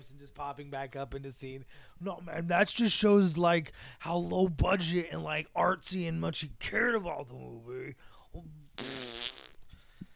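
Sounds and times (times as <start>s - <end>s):
speech: 0.0s - 9.1s
buzzy fart sound effect from a soundboard: 8.7s - 9.7s.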